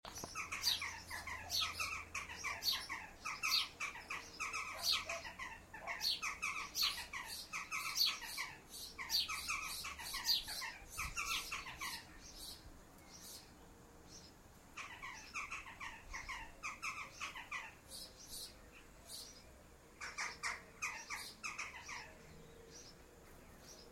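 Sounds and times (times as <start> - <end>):
jackdaws: 0.1 - 12.5, 14.8 - 18.5, 20.0 - 22.2.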